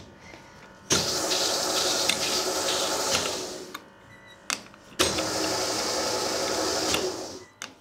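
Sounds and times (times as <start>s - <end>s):
dough sheeter rolling out pastry dough: 0.9s - 3.9s, 4.9s - 7.7s.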